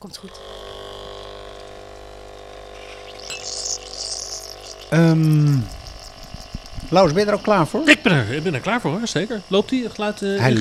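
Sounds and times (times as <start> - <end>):
speech: 0.0 - 0.6, 4.9 - 5.8, 6.9 - 10.5
coffee pouring into a glass in Nijmegen: 2.9 - 6.9.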